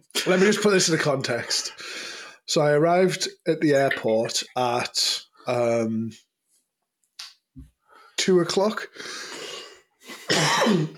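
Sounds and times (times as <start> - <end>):
speech: 0.1 - 6.3, 7.6 - 9.4, 10.3 - 10.9
hoarse cough after a night of karaoke: 10.2 - 10.9.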